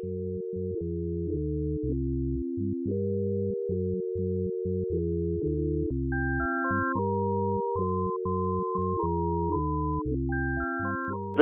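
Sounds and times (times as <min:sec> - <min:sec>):
steady low line of sine wave tones played on a keyboard: 0:00.0 - 0:11.3.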